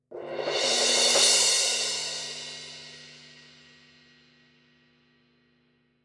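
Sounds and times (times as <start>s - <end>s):
16-inch medium cymbal roll: 0.1s - 4.2s.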